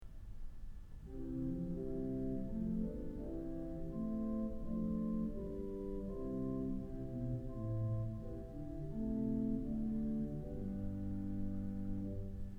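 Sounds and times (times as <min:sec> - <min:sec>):
pipe organ Great Erzahler stop in an auditorium: 0:01.0 - 0:12.5.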